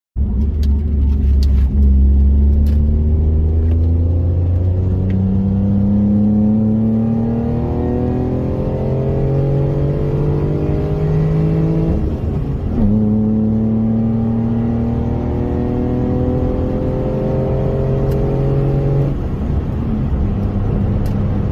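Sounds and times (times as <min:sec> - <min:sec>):
Daewoo Matiz car: 0:00.2 - 0:21.4.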